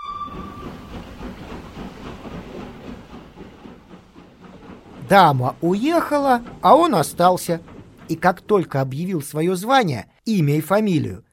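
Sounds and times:
brief whistle-like tone of a train departing a station: 0:00.0 - 0:01.5
train carriages rattling: 0:00.0 - 0:10.0
train rumble departing from a station: 0:00.0 - 0:11.2
speech: 0:05.1 - 0:11.2.

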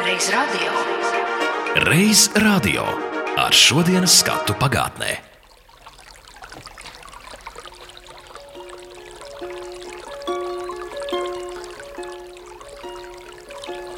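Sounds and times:
speech: 0:00.2 - 0:01.2, 0:01.8 - 0:05.3
spring water flowing: 0:03.6 - 0:13.9.

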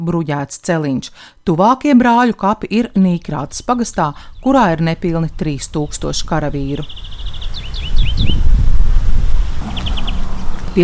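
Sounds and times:
speech: 0:00.0 - 0:08.4
low steady outdoor rumble: 0:01.9 - 0:10.8
birds chirping at a rural war cemetery in Nīkrāta parish: 0:02.4 - 0:10.8
cars passing on a highway: 0:04.3 - 0:10.8.

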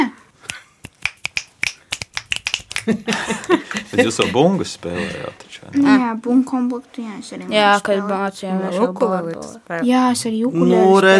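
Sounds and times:
finger snapping: 0:00.4 - 0:03.6
laughter: 0:02.7 - 0:05.4
speech: 0:02.9 - 0:11.1.

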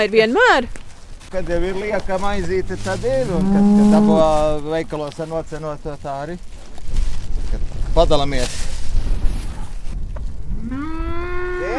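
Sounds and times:
speech: 0:00.0 - 0:06.6, 0:08.0 - 0:08.6
rustling breathy noise: 0:00.0 - 0:10.6
cow mooing in a mottled herd: 0:02.6 - 0:04.5, 0:10.6 - 0:11.7.

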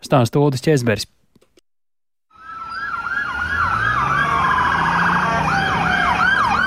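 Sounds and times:
speech: 0:00.1 - 0:01.2
emergency vehicle sirens wailing and yelping: 0:02.3 - 0:06.6
low rumble of traffic and engines: 0:02.4 - 0:06.6.

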